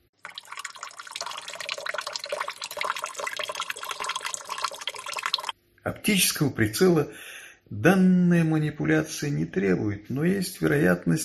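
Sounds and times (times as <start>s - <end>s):
urine stream from a 70-year-old man splashing into water in a toilet bowl: 0.0s - 5.6s
speech: 5.9s - 11.2s.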